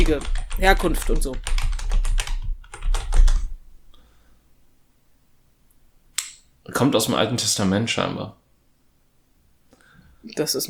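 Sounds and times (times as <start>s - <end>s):
speech: 0.0s - 1.5s, 6.7s - 8.4s, 10.2s - 10.6s
typing on a computer keyboard: 0.0s - 3.6s.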